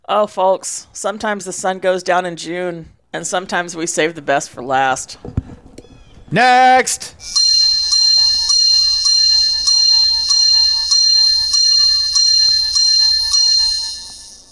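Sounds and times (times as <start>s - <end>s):
speech: 0.1s - 5.5s, 6.3s - 7.4s
bright metallic bell ringing in rapid strikes: 7.2s - 14.5s.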